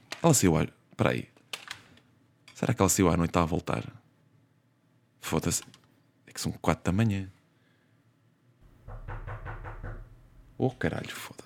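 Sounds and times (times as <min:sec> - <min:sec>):
speech: 0:00.2 - 0:01.3, 0:02.6 - 0:04.0, 0:05.2 - 0:05.8, 0:06.4 - 0:07.4, 0:10.6 - 0:11.4
firm knocking on a door: 0:08.7 - 0:10.2.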